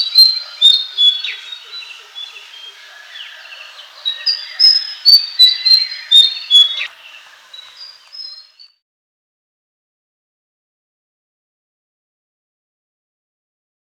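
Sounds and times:
White-throated fantail singing thin high whistled notes: 0:00.0 - 0:08.8.

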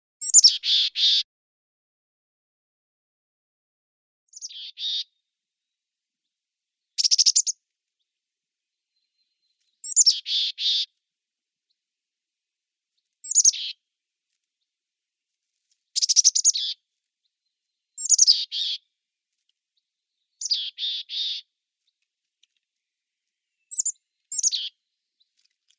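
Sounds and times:
mountain chickadee calls: 0:00.2 - 0:01.2, 0:04.3 - 0:05.2, 0:06.9 - 0:07.6, 0:09.0 - 0:10.9, 0:13.2 - 0:13.8, 0:16.0 - 0:16.8, 0:17.9 - 0:18.9, 0:20.1 - 0:21.5, 0:23.6 - 0:25.3.

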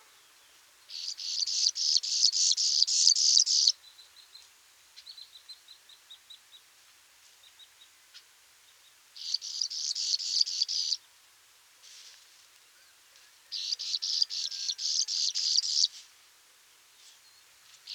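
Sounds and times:
graceful prinia singing buzzy notes: 0:00.0 - 0:04.4, 0:08.7 - 0:11.0, 0:13.4 - 0:16.0, 0:17.1 - 0:17.9.

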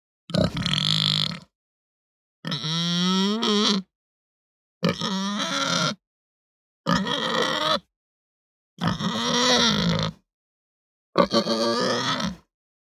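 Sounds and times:
Hampshire breed pig grunting and moaning: 0:00.3 - 0:01.5, 0:02.4 - 0:03.9, 0:04.8 - 0:06.0, 0:06.9 - 0:07.9, 0:08.8 - 0:10.2, 0:11.2 - 0:12.5.

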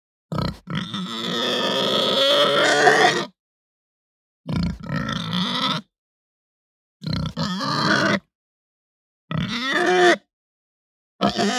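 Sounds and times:
Hampshire pig grunting and squealing: 0:00.3 - 0:03.4, 0:04.5 - 0:05.9, 0:07.0 - 0:08.3, 0:09.3 - 0:10.3, 0:11.2 - 0:11.5.

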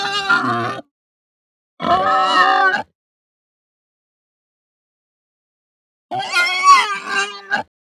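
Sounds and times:
Hampshire breed pig giving high distressed grunts and squeals: 0:00.0 - 0:00.9, 0:01.8 - 0:02.9, 0:06.1 - 0:07.7.

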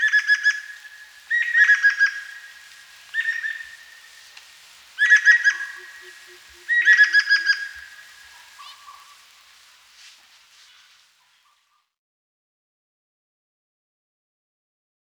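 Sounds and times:
Greater necklaced laughingthrush calling in loud whistled notes: 0:00.0 - 0:11.7.

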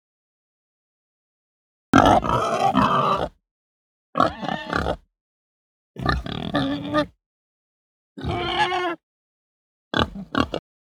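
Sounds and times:
Hampshire breed pig grunting and squealing: 0:02.0 - 0:03.4, 0:04.2 - 0:05.0, 0:06.0 - 0:07.2, 0:08.2 - 0:09.0, 0:09.9 - 0:10.6.

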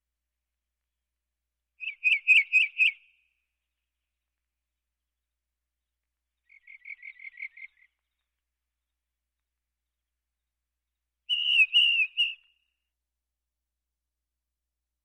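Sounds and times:
House wren song with bubbling trills and rattling phrases: 0:01.8 - 0:03.3, 0:06.4 - 0:08.4, 0:11.3 - 0:12.7.

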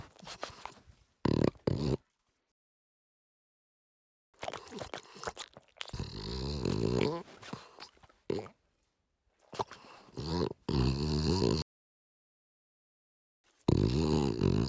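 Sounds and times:
French Bulldog making rough grunting snorts and snuffles: 0:00.0 - 0:02.0, 0:04.4 - 0:08.6, 0:09.4 - 0:11.6, 0:13.6 - 0:14.6.

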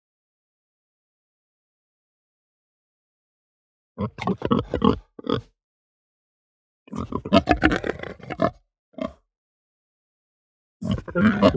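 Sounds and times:
Hampshire pig grunting gutturally: 0:04.0 - 0:05.5, 0:06.9 - 0:09.2, 0:10.8 - 0:11.5.

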